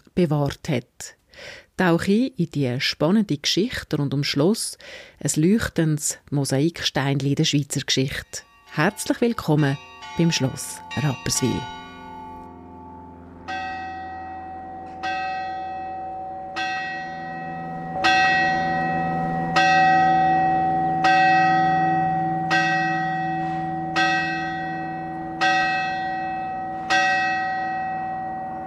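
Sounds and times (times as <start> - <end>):
speech: 0.2 - 11.8
church bell tolling the hour: 8.2 - 28.6.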